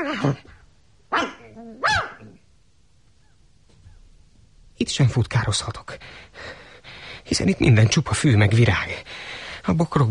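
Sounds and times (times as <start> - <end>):
speech: 0.0 - 1.8, 4.8 - 6.6, 7.3 - 10.0
dog on a leash barking: 1.1 - 2.4.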